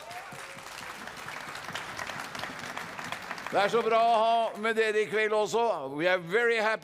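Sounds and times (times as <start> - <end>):
audience applause at a tent meeting in Lista Norway: 0.0 - 5.0
speech: 3.5 - 6.8.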